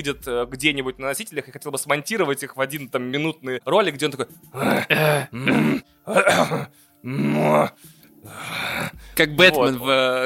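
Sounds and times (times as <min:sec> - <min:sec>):
speech: 0:00.0 - 0:10.2
man imitating a film hero's gruff grunting breaths: 0:04.5 - 0:09.0.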